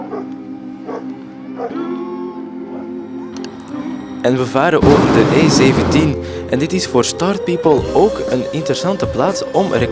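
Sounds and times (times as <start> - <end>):
dog barking: 0.0 - 1.8
speech: 4.2 - 9.9
steady hum of crowd noise: 4.8 - 6.5.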